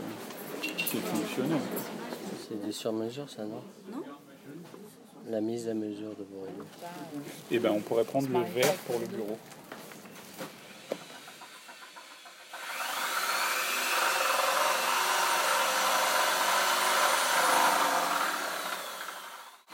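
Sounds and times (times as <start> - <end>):
speech: 0.9 - 9.6
power drill grinding into a wall while putting up a shelf: 10.4 - 19.7.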